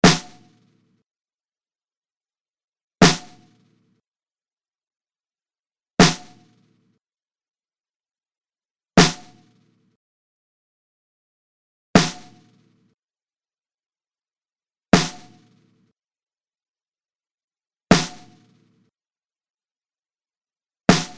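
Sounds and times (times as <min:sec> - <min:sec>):
snare drum mix: 0:00.0 - 0:00.5, 0:03.0 - 0:03.4, 0:06.0 - 0:06.5, 0:09.0 - 0:09.4, 0:12.0 - 0:12.5, 0:15.0 - 0:15.6, 0:17.9 - 0:18.5, 0:20.9 - 0:21.1.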